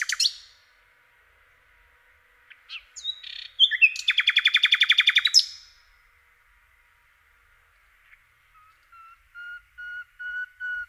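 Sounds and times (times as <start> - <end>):
Common nightingale singing varied phrases and fast repeated rattle: 0.0 - 0.7, 2.4 - 5.9, 8.1 - 10.8.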